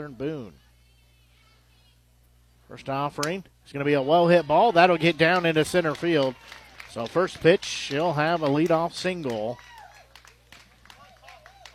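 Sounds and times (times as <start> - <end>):
speech: 0.0 - 0.6, 2.7 - 9.7
raised voices: 3.7 - 10.1
crowd clapping and cheering after a leadoff single: 4.3 - 11.7.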